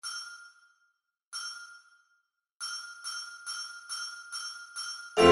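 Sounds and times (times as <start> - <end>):
mallets clicking: 1.4 - 2.0, 2.6 - 5.2.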